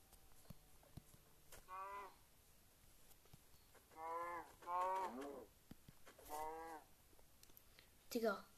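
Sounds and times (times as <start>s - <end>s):
video game cow mooing: 1.6s - 2.2s, 3.9s - 5.5s, 6.2s - 6.9s
speech: 8.1s - 8.5s.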